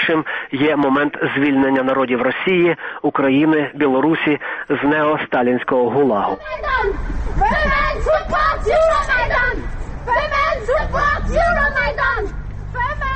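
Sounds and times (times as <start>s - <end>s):
speech: 0.0s - 13.0s
low rumble of street noise: 0.0s - 13.1s
small group of women shouting rhythmic chants in unison: 6.4s - 13.1s.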